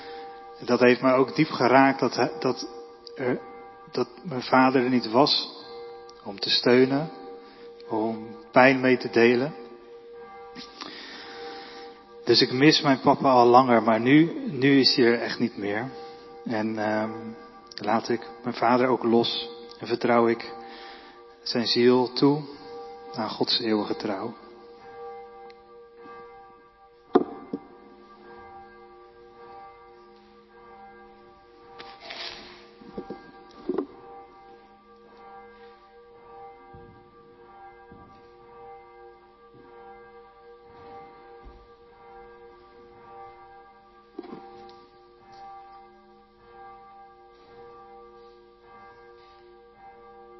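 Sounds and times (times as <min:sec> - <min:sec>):
church bell ringing at noon: 0:00.0 - 0:50.3
speech: 0:00.6 - 0:05.6, 0:06.2 - 0:07.2, 0:07.9 - 0:09.6, 0:12.3 - 0:20.6, 0:21.4 - 0:24.4.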